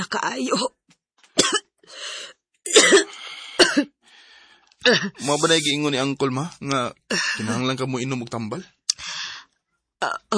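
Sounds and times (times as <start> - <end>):
speech: 0.0 - 0.8, 4.9 - 8.8, 10.0 - 10.3
wheezy raspy breath: 1.8 - 2.4, 3.0 - 4.6
person coughing harshly: 2.7 - 3.9.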